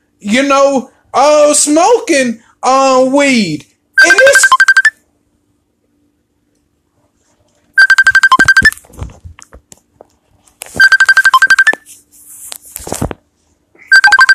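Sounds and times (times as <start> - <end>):
speech: 0.2 - 4.6
phone ringing with a bright pulsing electronic ringtone: 4.0 - 5.0, 7.8 - 8.8, 10.8 - 11.8, 13.9 - 14.3.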